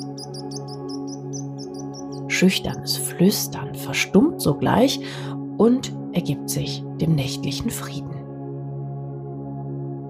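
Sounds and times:
faint distant bird chirping: 0.0s - 2.4s
speech: 2.4s - 8.2s.

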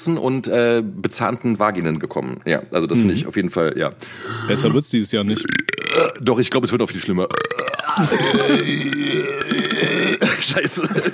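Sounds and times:
speech: 0.0s - 9.8s, 10.4s - 11.1s
long loud burp: 5.4s - 6.2s, 7.3s - 10.3s
laughter: 7.9s - 8.8s, 9.8s - 11.1s.

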